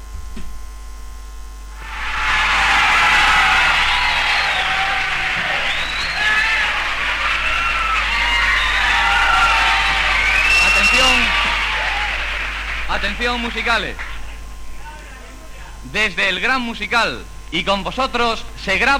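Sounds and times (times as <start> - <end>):
steady low mains hum: 0.0 - 18.9
high cheers and whistles from the concert audience: 1.8 - 14.4
live concert audience shouting and whooping: 1.8 - 14.4
speech: 13.2 - 14.1, 15.9 - 18.9.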